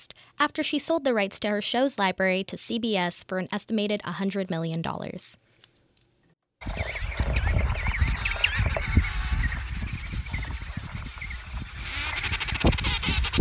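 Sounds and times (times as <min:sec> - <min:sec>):
speech: 0:00.4 - 0:05.4
steady low rumble of wind: 0:06.6 - 0:13.4
crowded penguin colony in Antarctica chirping and honking: 0:06.7 - 0:13.4.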